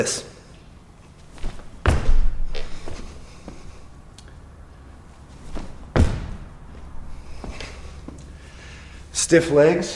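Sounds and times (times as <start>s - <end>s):
speech: 0.0s - 0.3s, 9.3s - 9.9s
unweighted jump landings thudding on floor: 1.4s - 3.6s, 5.4s - 7.8s.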